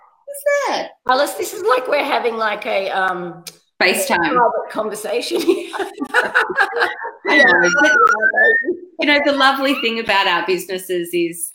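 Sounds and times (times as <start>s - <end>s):
speech: 0.4s - 11.5s
laughter: 1.2s - 2.3s, 3.8s - 10.2s
puppy giving a drawn-out falling whine: 6.9s - 9.9s.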